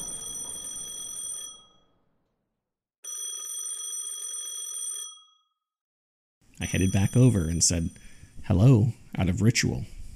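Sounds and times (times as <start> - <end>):
old-style telephone bell ringing: 0.0 - 2.0, 3.0 - 5.7, 6.6 - 8.2
speech: 6.6 - 10.0.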